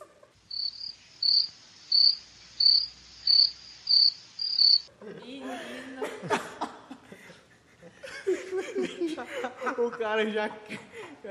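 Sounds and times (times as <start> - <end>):
crickets chirping: 0.4 - 4.9
laughter: 5.0 - 11.2
speech: 8.8 - 11.3.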